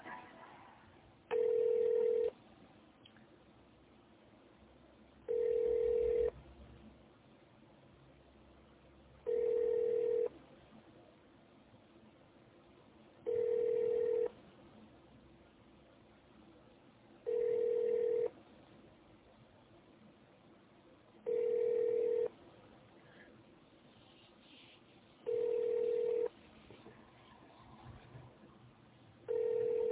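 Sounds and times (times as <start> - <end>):
electronic telephone ring tones during a call transfer: 1.3 - 2.3, 5.3 - 6.3, 9.3 - 10.3, 13.3 - 14.3, 17.3 - 18.3, 21.3 - 22.3, 25.3 - 26.3, 29.3 - 29.9.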